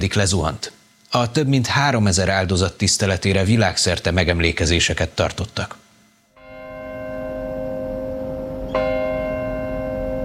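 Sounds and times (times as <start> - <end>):
speech: 0.0 - 5.8
large church bell ringing at a chapel in New York: 6.4 - 10.2.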